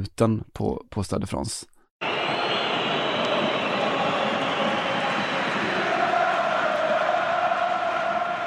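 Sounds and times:
speech: 0.0s - 2.4s
huge stadium crowd chanting in tribute to a footballer: 2.0s - 8.4s.

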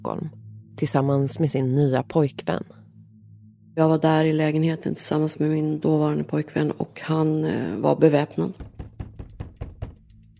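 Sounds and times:
speech: 0.0s - 2.8s, 3.8s - 8.7s
heavy thudding knocks on a door: 8.6s - 10.3s.

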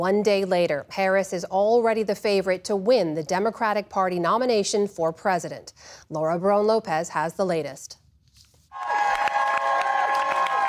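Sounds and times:
speech: 0.0s - 8.0s
crowd applauding at a campaign office: 8.8s - 10.6s.

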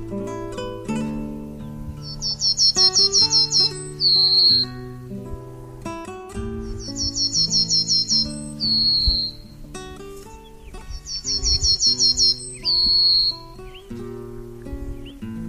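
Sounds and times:
pine bunting singing: 0.0s - 5.3s, 6.4s - 15.4s
steady instrumental music: 0.0s - 15.4s.

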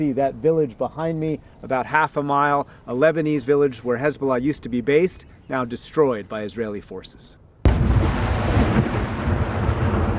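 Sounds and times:
speech: 0.0s - 7.4s
outgoing artillery fire on the northern border with Lebanon: 7.6s - 10.1s.

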